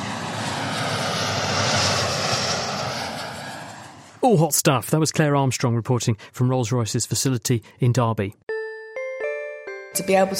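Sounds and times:
jet aircraft engine roaring: 0:00.0 - 0:04.3
speech: 0:04.2 - 0:08.5, 0:10.0 - 0:10.3.

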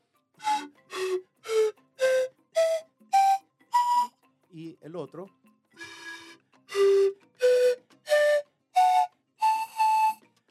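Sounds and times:
breathy siku panpipe notes stepping downward: 0:00.4 - 0:04.2, 0:05.8 - 0:10.2
speech: 0:04.6 - 0:05.5.

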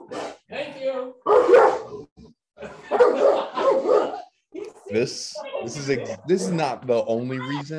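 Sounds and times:
dog barking: 0:00.0 - 0:00.4, 0:01.2 - 0:02.0, 0:02.9 - 0:04.3
laughter: 0:02.6 - 0:04.4
speech: 0:04.9 - 0:07.7.

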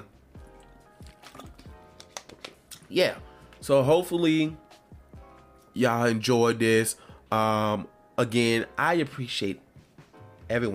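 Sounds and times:
quiet sipping and swallowing of water: 0:00.5 - 0:01.8
faint wet mouth sounds: 0:00.5 - 0:02.9
speech: 0:02.9 - 0:04.6, 0:05.8 - 0:09.6, 0:10.5 - 0:10.7.

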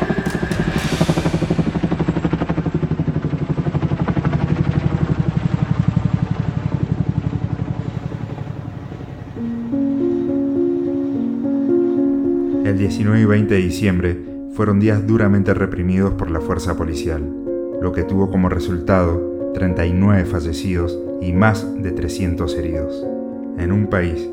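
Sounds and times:
helicopter flying overhead: 0:00.0 - 0:09.4
low tonal music bed: 0:00.0 - 0:24.3
speech: 0:12.8 - 0:24.3.

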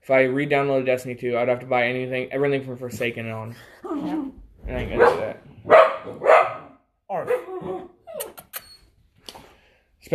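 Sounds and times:
speech: 0:00.0 - 0:06.2
small pug dog whining: 0:03.8 - 0:04.4, 0:07.3 - 0:09.1
small pug dog barking: 0:04.9 - 0:07.9.

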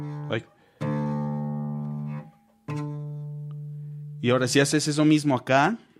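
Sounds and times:
speech: 0:00.0 - 0:00.6, 0:04.2 - 0:05.9
low open guitar string plucks: 0:00.0 - 0:04.6.

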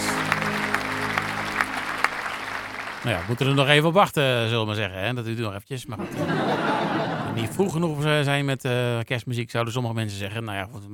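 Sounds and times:
applause: 0:00.0 - 0:04.0
speech: 0:03.0 - 0:10.9
laughter: 0:06.0 - 0:07.8.

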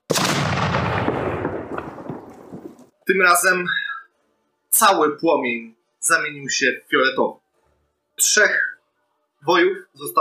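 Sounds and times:
loud explosion rumbling and crackling: 0:00.1 - 0:02.9
speech: 0:03.1 - 0:03.8, 0:04.7 - 0:07.4, 0:08.2 - 0:08.7, 0:09.4 - 0:10.1.

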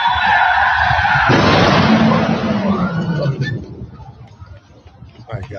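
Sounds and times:
car tires screeching: 0:00.0 - 0:03.6
heavy car crash: 0:01.2 - 0:03.1.

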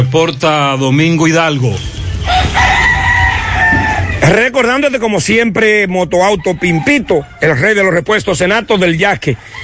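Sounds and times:
speech: 0:00.1 - 0:02.7, 0:04.2 - 0:09.6
rooster crowing: 0:02.2 - 0:04.3, 0:06.2 - 0:07.7, 0:09.4 - 0:09.6.

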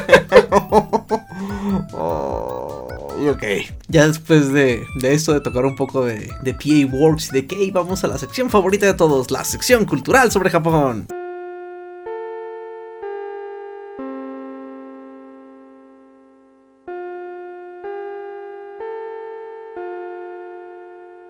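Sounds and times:
school bell chime melody: 0:00.0 - 0:01.9, 0:07.4 - 0:11.1
laughter: 0:00.0 - 0:03.2
speech: 0:03.3 - 0:11.2.

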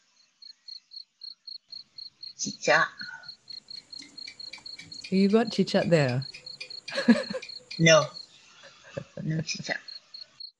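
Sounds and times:
crickets chirping: 0:00.0 - 0:10.5
speech: 0:02.4 - 0:03.1, 0:05.1 - 0:06.3, 0:07.0 - 0:08.2, 0:09.3 - 0:09.9
soft low hum: 0:04.0 - 0:08.2
laughter: 0:06.9 - 0:07.4.

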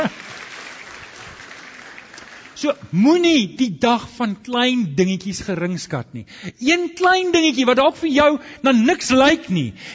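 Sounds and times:
laughter: 0:00.0 - 0:00.3
crowd applauding for engaged couple: 0:00.0 - 0:02.6
speech: 0:02.6 - 0:09.9.

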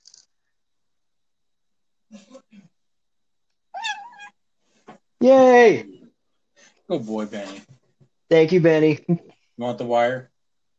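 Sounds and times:
six-month-old male cat meowing: 0:03.7 - 0:04.4
speech: 0:05.2 - 0:05.9, 0:06.9 - 0:07.7, 0:08.3 - 0:10.3.

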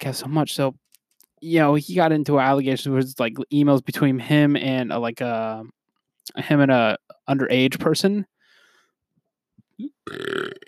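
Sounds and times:
speech: 0:00.0 - 0:08.3, 0:09.8 - 0:10.6
burp: 0:09.8 - 0:10.6.

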